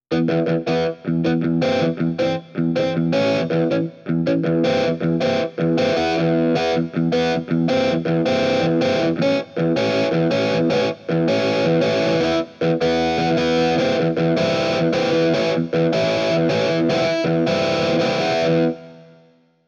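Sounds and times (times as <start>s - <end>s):
electric guitar sound on a Korg M50: 0.1s - 19.4s.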